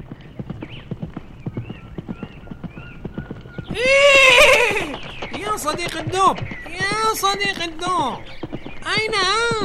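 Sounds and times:
horse hooves clip-clopping while trotting: 0.0 - 9.6
horse giving a loud high whinny: 3.7 - 5.0
speech: 5.6 - 9.6.

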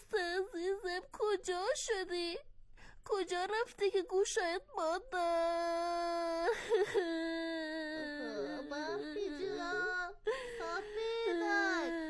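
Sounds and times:
speech: 0.8 - 2.5, 3.1 - 7.6
child-like voice wailing and whimpering: 5.2 - 12.0
child-like voice speaking between sobs: 8.1 - 12.0.

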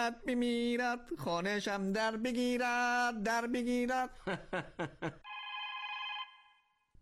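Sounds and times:
speech: 0.0 - 5.3
telephone ringing with a steady electronic tone: 5.2 - 6.8.

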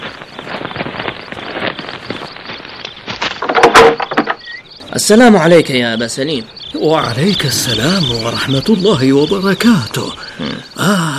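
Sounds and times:
door creaking: 3.3 - 4.7
wooden knocks of a door opening: 3.4 - 4.5
speech: 5.0 - 11.1.

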